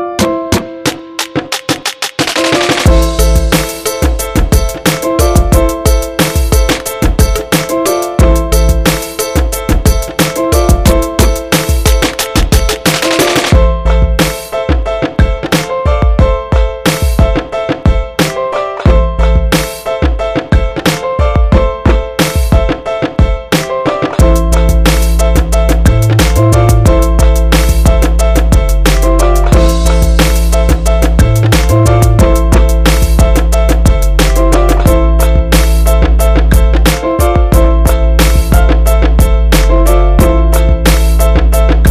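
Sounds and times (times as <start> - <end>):
boom bap beat: 0.2 - 41.8.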